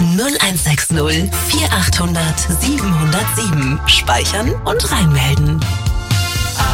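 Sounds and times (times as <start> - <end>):
speech: 0.2 - 5.8
short musical jingle: 1.3 - 6.5.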